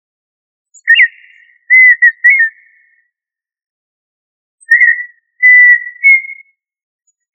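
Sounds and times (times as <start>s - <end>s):
tinamou giving pure whistled phrases: 0.8s - 2.9s, 4.6s - 6.6s.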